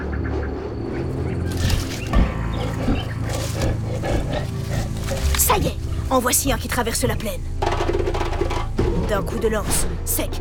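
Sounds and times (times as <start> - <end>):
dense wild background: 0.0 - 10.3
lion growling and roaring: 0.6 - 6.1
speech: 5.6 - 7.6, 9.1 - 10.3.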